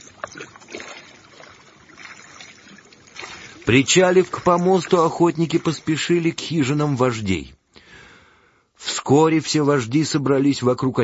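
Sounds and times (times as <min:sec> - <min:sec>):
oars splashing through water as hunters row boats: 0:00.0 - 0:07.4
speech: 0:03.7 - 0:07.6, 0:09.0 - 0:11.0.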